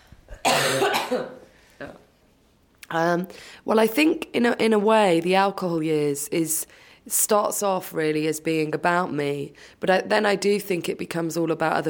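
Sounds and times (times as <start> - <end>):
woman coughing: 0.4 - 2.0
speech: 0.7 - 2.0, 2.9 - 11.8.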